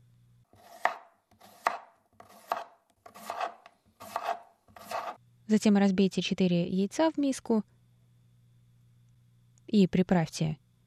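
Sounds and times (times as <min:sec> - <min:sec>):
knife chopping tomatoes and onion on a board: 0:00.6 - 0:05.2
speech: 0:05.5 - 0:07.8, 0:09.7 - 0:10.6.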